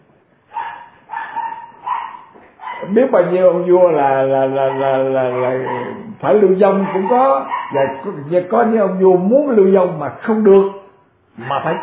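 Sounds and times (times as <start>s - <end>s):
dog barking: 0.5s - 3.0s, 4.6s - 8.3s
speech: 2.8s - 10.8s, 11.4s - 11.8s.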